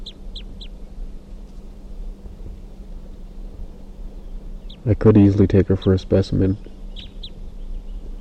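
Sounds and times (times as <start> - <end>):
wild female crossbill chip calls: 0.0 - 0.8, 3.0 - 8.1
constant low hum: 0.0 - 8.1
speech: 4.8 - 6.7.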